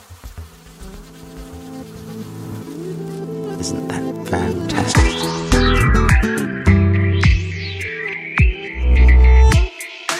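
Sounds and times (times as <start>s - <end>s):
bee buzzing: 0.0s - 9.6s
speech: 3.6s - 5.5s.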